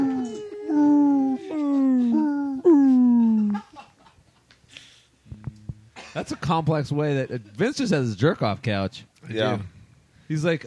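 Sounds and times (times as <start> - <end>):
voice imitating whale song with moaning wails: 0.0 - 3.6
speech: 6.2 - 10.6.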